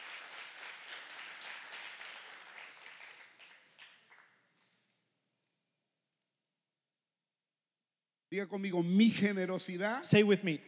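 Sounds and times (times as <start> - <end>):
audience applause: 0.0 - 4.4
speech: 8.3 - 10.6.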